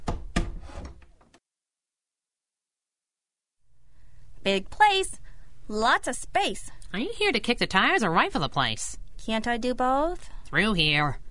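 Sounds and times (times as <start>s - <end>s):
door rattling and scraping while pushed open: 0.0s - 1.2s
speech: 4.4s - 11.2s.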